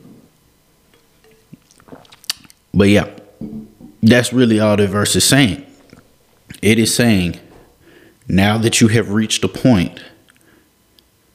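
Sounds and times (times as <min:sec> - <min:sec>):
person taking a swig of water from a bottle: 0:00.9 - 0:02.6, 0:05.7 - 0:06.6
speech: 0:02.8 - 0:03.2, 0:04.0 - 0:05.7, 0:06.6 - 0:07.4, 0:08.3 - 0:10.2.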